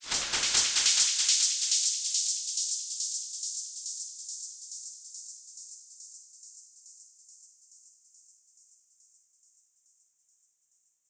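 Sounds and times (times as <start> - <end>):
crashed cymbal effect at 140: 0.0 - 2.4.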